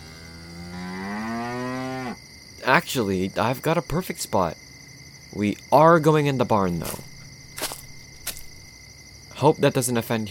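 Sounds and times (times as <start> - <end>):
cow mooing in a field: 0.0 - 2.2
outdoor hum: 0.0 - 10.2
speech: 2.7 - 4.6, 5.3 - 7.1, 9.4 - 10.2.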